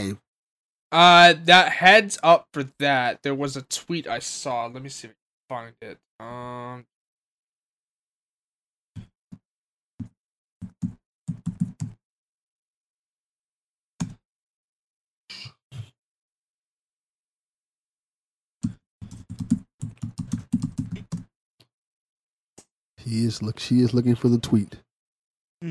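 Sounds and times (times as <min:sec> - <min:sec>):
speech: 0:00.0 - 0:00.2, 0:00.9 - 0:06.9, 0:23.0 - 0:24.8
typing on a computer keyboard: 0:19.0 - 0:21.3.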